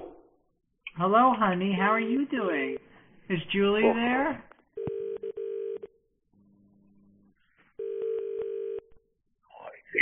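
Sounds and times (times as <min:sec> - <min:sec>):
speech: 0:01.0 - 0:04.5
telephone ringing: 0:04.8 - 0:06.0, 0:07.8 - 0:08.9.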